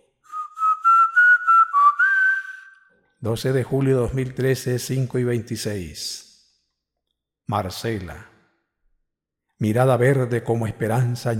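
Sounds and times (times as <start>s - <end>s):
person whistling a tune: 0.2s - 2.9s
speech: 3.2s - 6.3s, 7.5s - 8.3s, 9.6s - 11.3s.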